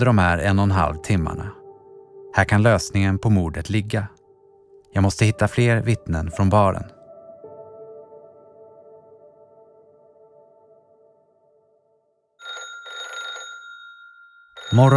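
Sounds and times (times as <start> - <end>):
speech: 0.0 - 1.6, 2.4 - 4.2, 4.9 - 7.0, 14.7 - 14.9
telephone ringing with a trilling electronic tone: 12.4 - 14.9.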